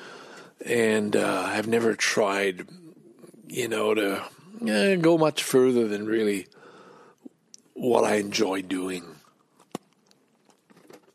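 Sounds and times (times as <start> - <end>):
speech: 0.6 - 2.8, 3.5 - 6.5, 7.8 - 9.2
chewing crunches of a cookie: 9.5 - 11.1.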